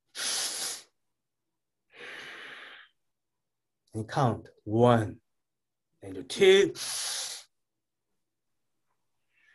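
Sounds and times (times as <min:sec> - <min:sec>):
forceful deep breath in: 0:00.1 - 0:00.9, 0:01.9 - 0:03.0
speech: 0:03.9 - 0:05.2, 0:06.0 - 0:07.2.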